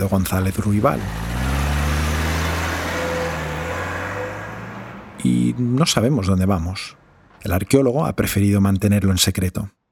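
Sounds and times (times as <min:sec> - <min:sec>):
speech: 0:00.0 - 0:01.3, 0:05.2 - 0:09.8
car engine humming while pulling away in a parking garage: 0:00.0 - 0:07.4.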